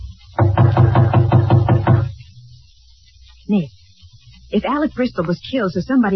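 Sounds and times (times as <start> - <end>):
firm knocking on an apartment door: 0.4 - 2.2
speech: 3.5 - 3.8, 4.5 - 6.1.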